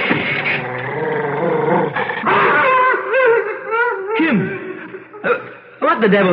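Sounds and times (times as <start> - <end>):
dog growling: 0.0 - 3.0
laughter: 2.2 - 5.7
speech: 6.0 - 6.3.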